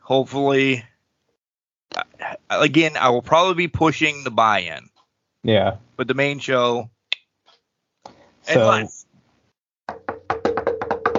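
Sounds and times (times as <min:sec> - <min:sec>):
speech: 0:00.1 - 0:00.9, 0:02.5 - 0:07.0, 0:08.5 - 0:09.0
knuckles knocking on a wooden surface: 0:09.9 - 0:11.1.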